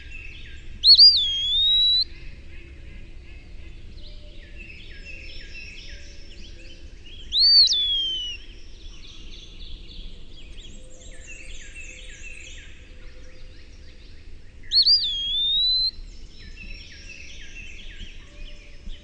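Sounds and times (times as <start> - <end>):
soft chorus of birds: 0.0 - 19.0
Eastern wood pewee slurred whistle: 0.8 - 2.0, 7.3 - 8.4, 14.7 - 15.9.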